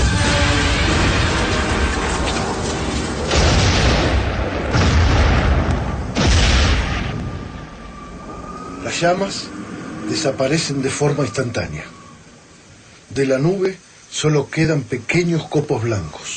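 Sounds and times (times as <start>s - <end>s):
anti-aircraft cannon firing at a cloud in the sky: 0.0s - 8.1s
sharp booms: 0.0s - 8.3s
low rumbling blasts: 0.0s - 13.5s
speech: 9.0s - 12.0s, 13.1s - 16.3s.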